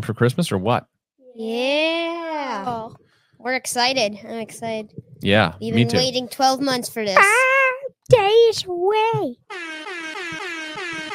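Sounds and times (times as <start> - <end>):
speech: 0.0 - 2.0, 2.6 - 7.5, 8.1 - 9.8
air horn blast: 9.5 - 11.1.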